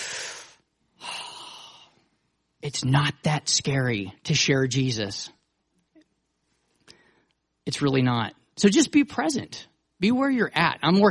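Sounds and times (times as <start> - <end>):
person breathing deeply during a sermon: 0.0 - 2.0
speech: 2.6 - 5.4, 7.7 - 11.0.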